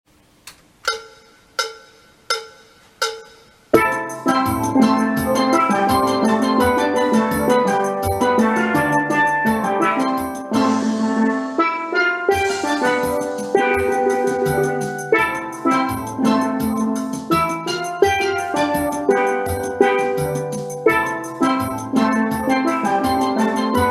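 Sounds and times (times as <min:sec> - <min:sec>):
steel band playing alto phrases tutti: 0:03.1 - 0:23.8.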